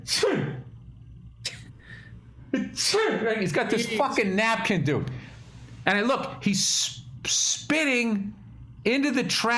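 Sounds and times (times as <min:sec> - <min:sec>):
speech: 0:00.0 - 0:00.7, 0:02.5 - 0:05.2, 0:05.8 - 0:09.5
voice imitating a man's sneeze: 0:00.0 - 0:00.7.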